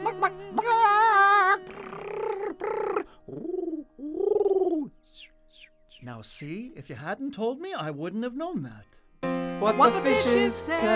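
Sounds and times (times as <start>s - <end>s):
person imitating warbling bird calls and dove coos: 0.0s - 6.1s
speech: 6.0s - 9.0s, 9.6s - 10.9s.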